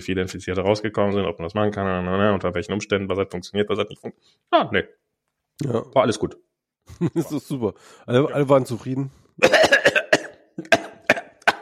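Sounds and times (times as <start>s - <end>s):
speech: 0.0s - 5.0s, 5.6s - 9.8s
laughter: 6.8s - 7.6s
person coughing harshly: 9.4s - 11.6s.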